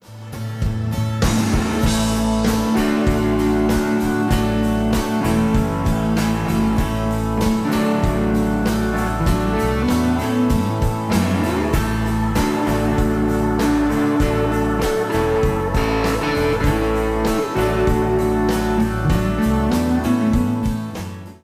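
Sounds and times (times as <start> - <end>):
Gibson Les Paul Standard 1958 electric guitar: 0.0 - 21.4.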